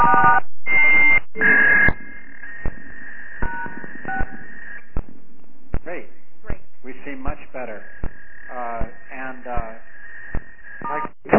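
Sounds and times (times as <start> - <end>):
long steady electronic tone: 0.0 - 11.3.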